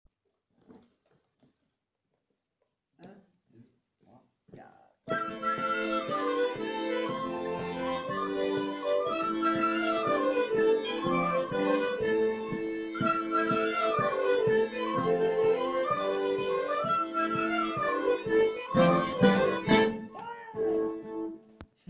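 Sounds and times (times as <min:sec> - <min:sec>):
flutes playing an intro: 0:05.1 - 0:21.4
left-hand chords on diatonic accordions: 0:05.1 - 0:21.5.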